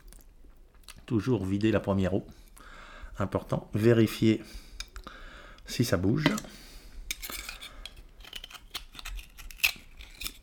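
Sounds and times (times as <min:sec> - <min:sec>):
speech: 0:01.1 - 0:02.4, 0:03.2 - 0:04.7, 0:05.7 - 0:06.6
knife prying open an oyster shell: 0:07.1 - 0:10.4.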